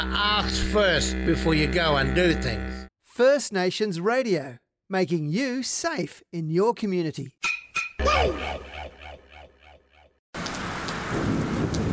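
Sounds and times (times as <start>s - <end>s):
speech: 0.0s - 7.4s
heavy rain pouring down: 10.4s - 11.9s
deep rumble of thunder: 10.6s - 11.9s.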